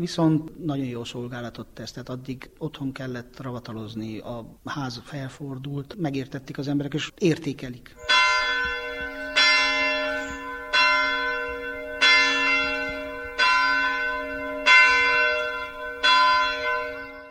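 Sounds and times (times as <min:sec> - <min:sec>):
speech: 0:00.0 - 0:08.0
church bells ringing from a church tower: 0:08.0 - 0:17.2.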